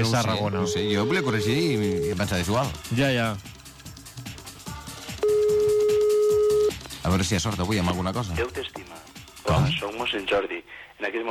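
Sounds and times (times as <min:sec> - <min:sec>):
speech: 0:00.0 - 0:03.6, 0:07.1 - 0:11.2
rhythmic sound: 0:00.0 - 0:10.5
telephone ringback tone while placing a call: 0:00.2 - 0:02.3, 0:05.2 - 0:06.7.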